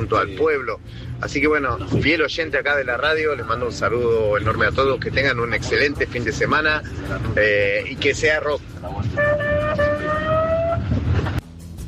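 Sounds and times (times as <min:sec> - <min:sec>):
speech: 0:00.0 - 0:09.8
rough rumbling background: 0:00.0 - 0:11.8
ambulance siren wailing: 0:09.0 - 0:11.3.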